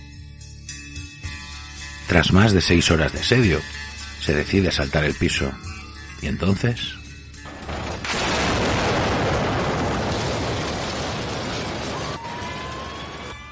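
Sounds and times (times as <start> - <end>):
speech: 2.1 - 7.0
loud explosion with sustained roar: 7.5 - 13.2
faint siren wails: 11.2 - 13.5.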